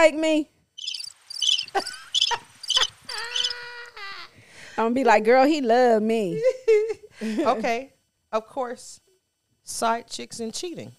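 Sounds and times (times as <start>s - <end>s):
speech: 0.0s - 0.5s, 1.8s - 2.0s, 4.8s - 9.0s, 9.7s - 10.9s
crickets chirping: 0.8s - 3.9s.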